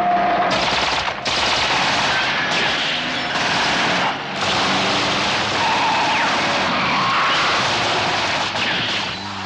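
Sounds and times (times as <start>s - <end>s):
rapid gunfire from a van aimed at a car: 0.5s - 6.6s, 7.4s - 9.2s.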